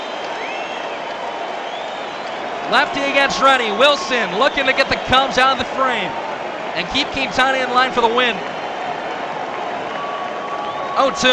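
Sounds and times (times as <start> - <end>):
whistles: 0.0 - 5.2, 9.9 - 11.3
baseball crowd applause: 0.0 - 11.3
large baseball crowd roaring and cheering: 0.0 - 11.3
speech: 2.7 - 6.2, 6.8 - 8.5, 11.0 - 11.3.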